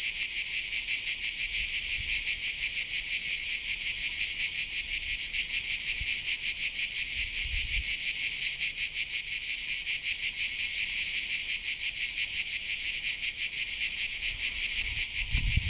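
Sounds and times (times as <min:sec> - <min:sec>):
cicadas droning in Sardinia: 0:00.0 - 0:15.6.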